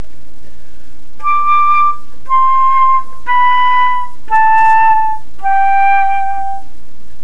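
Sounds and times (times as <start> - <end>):
flute note with correct release: 1.2 - 6.8.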